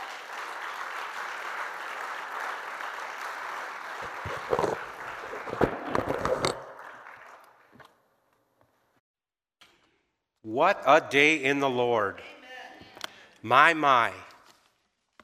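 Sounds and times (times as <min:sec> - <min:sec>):
crowd clapping in praise of the Lord: 0:00.0 - 0:08.0
speech: 0:04.2 - 0:04.8, 0:10.6 - 0:12.4, 0:13.4 - 0:14.3.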